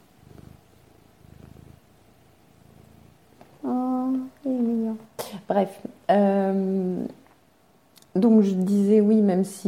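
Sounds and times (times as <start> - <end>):
cat purring: 0.0 - 5.1
speech: 5.5 - 7.1, 8.4 - 9.6.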